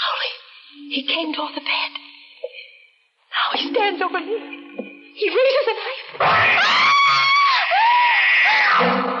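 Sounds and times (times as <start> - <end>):
speech: 0.9 - 2.0, 3.5 - 4.6, 5.2 - 6.8
woman screaming in terror: 6.4 - 8.9.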